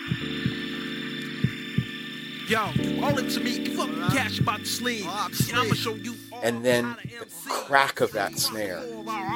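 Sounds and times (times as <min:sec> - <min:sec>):
deep heartbeat in a song intro: 0:00.1 - 0:00.7, 0:01.4 - 0:02.0, 0:02.7 - 0:03.3, 0:04.1 - 0:04.7, 0:05.4 - 0:06.0
speech: 0:02.5 - 0:09.3.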